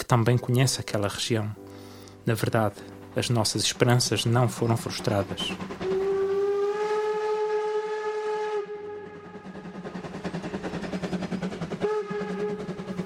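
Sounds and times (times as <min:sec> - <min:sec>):
speech: 0:00.1 - 0:01.6, 0:02.3 - 0:05.9
steam train chugging along the tracks through the Douro and Tua valleys: 0:02.2 - 0:13.0
steam train whistle sounding a long steady blast: 0:05.4 - 0:09.8, 0:11.2 - 0:13.0.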